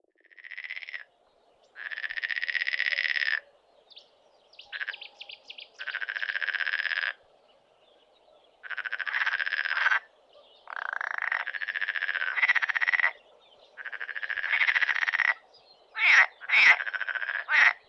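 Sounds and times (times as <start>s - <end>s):
Rana ridibunda marsh frog calling: 0.2s - 1.1s, 1.8s - 3.5s, 4.7s - 7.3s, 8.6s - 17.8s.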